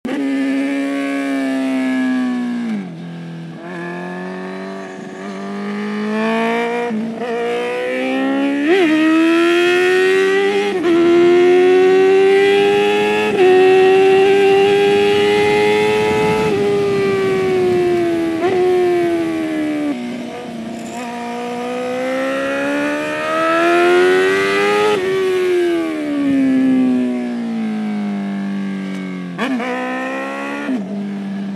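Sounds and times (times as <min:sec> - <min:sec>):
motorcycle engine at full throttle: 0:00.1 - 0:31.5.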